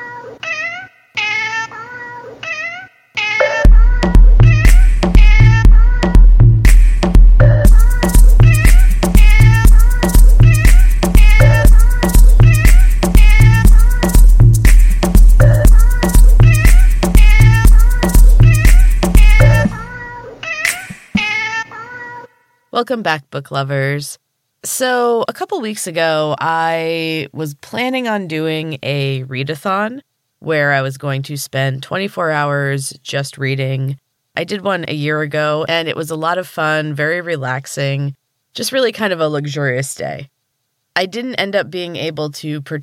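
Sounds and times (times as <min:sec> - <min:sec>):
cat meowing: 0:00.0 - 0:06.0, 0:19.3 - 0:22.3
upbeat tune with a steady thumping beat: 0:03.4 - 0:20.0, 0:20.6 - 0:21.3
speech: 0:22.9 - 0:40.4, 0:41.0 - 0:42.8.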